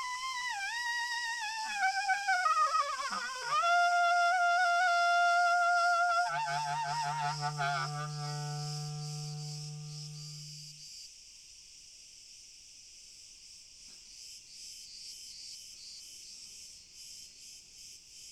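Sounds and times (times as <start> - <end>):
crickets in a steady high shimmering chorus: 0.0 - 18.3
low harmonic tone: 6.3 - 10.7
speech: 6.4 - 8.9.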